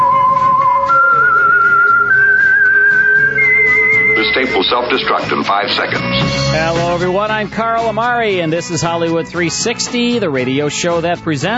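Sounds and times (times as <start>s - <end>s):
slow eerie radio show theme tune whistled: 0.0s - 5.4s
soft low instrumental backing: 0.0s - 11.5s
speech: 4.7s - 11.5s.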